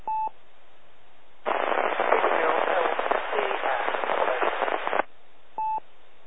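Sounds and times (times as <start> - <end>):
loud hissing static on an amateur radio net: 1.5 - 5.1.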